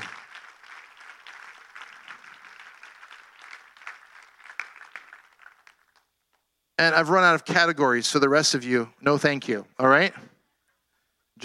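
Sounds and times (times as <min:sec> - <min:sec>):
large church audience applauding: 0:00.0 - 0:06.1
speech: 0:06.8 - 0:10.3.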